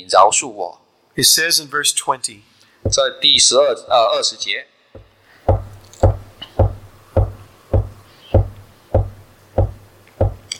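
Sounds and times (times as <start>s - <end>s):
speech: 0.0s - 5.0s
firm knocking on a wooden door: 5.0s - 10.5s.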